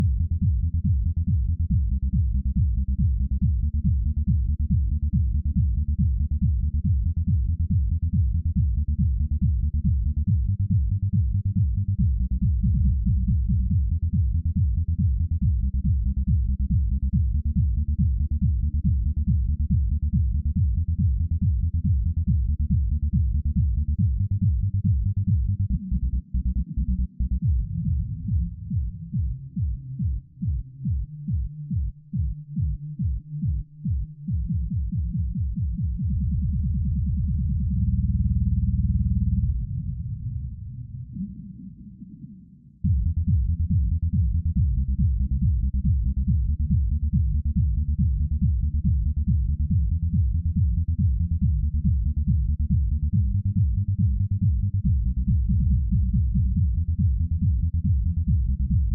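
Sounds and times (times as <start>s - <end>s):
bass: 0.0s - 58.9s.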